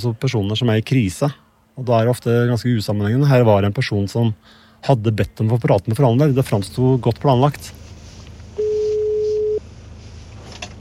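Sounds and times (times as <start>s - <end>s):
speech: 0.0s - 7.8s
telephone ringing tone on an outgoing call: 8.6s - 9.6s.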